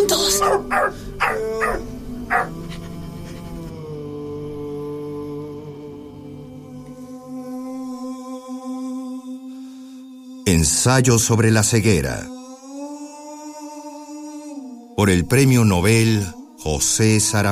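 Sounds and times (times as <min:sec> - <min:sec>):
dog barking: 0:00.1 - 0:02.6
speech: 0:00.4 - 0:02.6, 0:10.5 - 0:12.4, 0:15.0 - 0:17.5.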